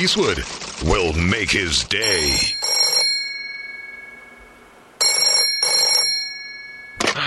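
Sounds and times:
speech: 0.0 - 2.6
telephone bell ringing in an office: 2.0 - 7.0.

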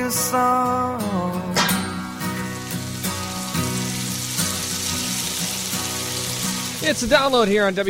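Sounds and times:
speech: 0.1 - 1.5, 6.8 - 7.8
food sizzling and crackling in a frying pan: 1.8 - 7.8.

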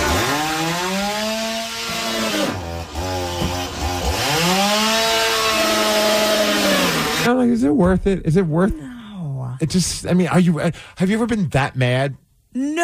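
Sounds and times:
chainsaw cutting into a television: 0.0 - 7.3
speech: 7.6 - 8.9, 9.6 - 12.8.

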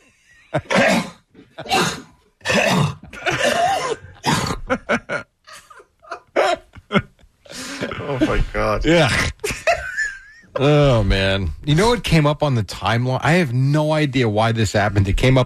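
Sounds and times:
speech: 0.5 - 1.0, 8.2 - 9.3, 10.6 - 15.4
harsh raspy coughing: 0.5 - 5.1, 6.2 - 9.8.

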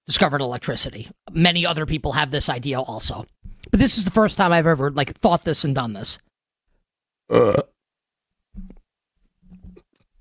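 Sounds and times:
speech: 0.1 - 6.3, 7.3 - 7.7
low grunting sounds: 7.3 - 7.7
loud raspy burp: 7.3 - 7.8.

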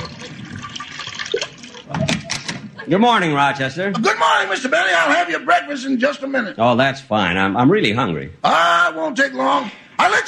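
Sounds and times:
cognac poured into a small dish: 0.0 - 2.0
speech: 2.8 - 10.2.

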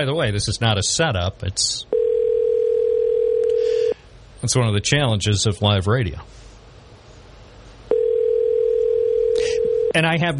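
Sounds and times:
speech: 0.0 - 2.0, 4.4 - 6.4, 10.0 - 10.3
telephone line tone on a live radio call-in line: 1.9 - 4.0, 7.9 - 10.0.

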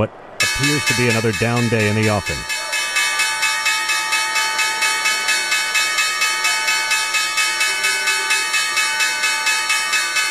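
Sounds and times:
speech: 0.0 - 2.6
New York Stock Exchange opening bell ringing: 0.4 - 10.2.

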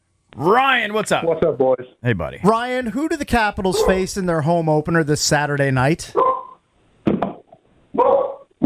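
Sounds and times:
speech: 0.4 - 6.3
dog barking: 3.7 - 4.0, 6.2 - 6.6, 8.0 - 8.5.

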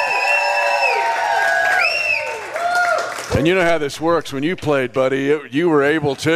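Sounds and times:
overlapping whoops and yells from many voices: 0.0 - 3.1
live show audience cheering for a former player: 0.0 - 4.2
speech: 3.4 - 6.3.

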